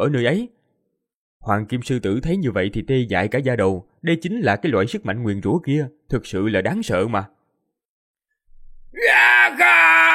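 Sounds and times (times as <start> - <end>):
speech: 0.0 - 0.6, 1.4 - 7.4, 8.9 - 10.1
many people screaming in pain: 9.0 - 10.1.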